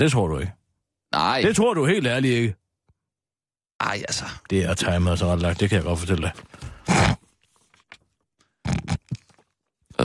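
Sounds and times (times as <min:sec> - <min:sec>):
speech: 0:00.0 - 0:02.6, 0:03.8 - 0:07.1
wet snorts of snot being sniffed up the nose: 0:06.7 - 0:07.2.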